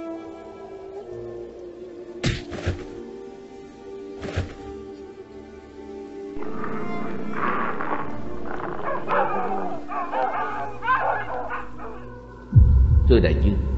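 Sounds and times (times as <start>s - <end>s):
dog barking and yipping: 6.4s - 12.2s
steady low hum: 6.4s - 13.7s
speech: 13.1s - 13.7s.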